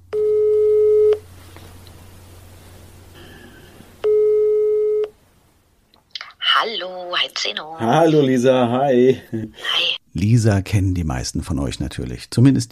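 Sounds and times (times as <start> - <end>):
telephone ringback tones while calling a number: 0.1 - 1.2, 4.0 - 5.1
quiet telephone line hiss: 0.2 - 1.3, 3.2 - 5.2
speech: 7.4 - 12.6.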